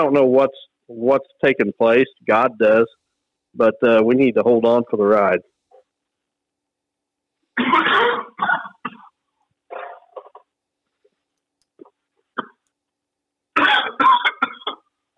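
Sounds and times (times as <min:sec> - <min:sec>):
speech: 0:00.0 - 0:03.0, 0:03.6 - 0:05.5
person coughing: 0:07.6 - 0:10.5, 0:13.6 - 0:14.9.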